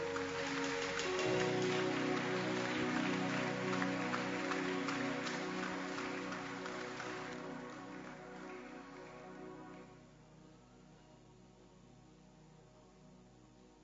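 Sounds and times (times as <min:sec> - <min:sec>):
church congregation clapping hands: 0:00.0 - 0:09.8
sustained musical tones: 0:00.0 - 0:10.0.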